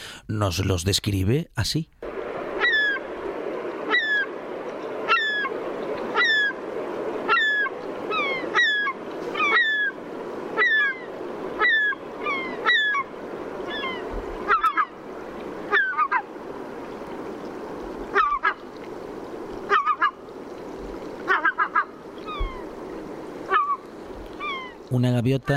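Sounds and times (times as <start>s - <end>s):
speech: 0.3s - 2.0s, 25.2s - 25.5s
cormorant colony chorus of hoarse barking moans: 2.4s - 3.2s, 3.8s - 15.0s, 15.6s - 16.4s, 18.1s - 18.7s, 19.6s - 20.2s, 21.2s - 24.9s.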